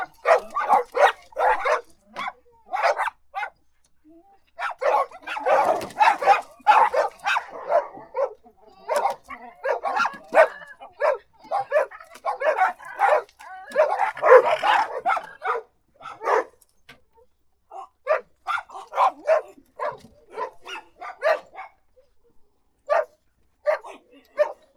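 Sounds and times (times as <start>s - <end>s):
dog barking: 0.0s - 3.6s, 4.6s - 16.6s, 17.7s - 21.9s, 22.9s - 24.7s.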